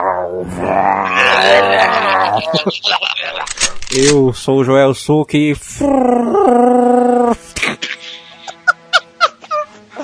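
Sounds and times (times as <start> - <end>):
giant movie monster roar: 0.0 - 2.6
speech: 0.3 - 7.4
laughter: 1.2 - 3.7, 7.8 - 9.7.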